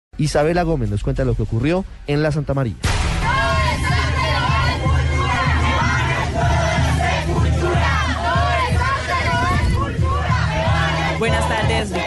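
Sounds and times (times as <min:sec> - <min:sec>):
speech: 0:00.2 - 0:03.1
crowd of animal rights protesters and bullfight supporters shouting and chanting: 0:03.0 - 0:12.0
dense roar of voices outside a bullring: 0:03.3 - 0:12.0.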